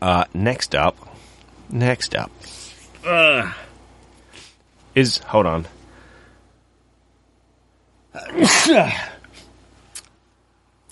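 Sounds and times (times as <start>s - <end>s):
speech: 0.0s - 1.1s, 1.7s - 3.6s, 5.0s - 5.8s, 8.2s - 9.1s
sneeze: 8.2s - 9.2s.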